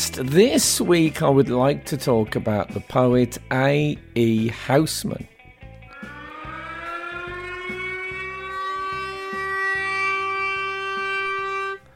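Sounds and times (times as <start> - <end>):
speech: 0.1 - 5.3
siren wailing: 5.9 - 11.9.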